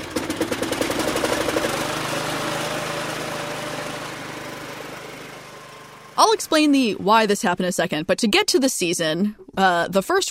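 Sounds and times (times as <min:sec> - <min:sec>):
small lawn mower engine running: 0:00.0 - 0:07.3
speech: 0:06.2 - 0:10.2.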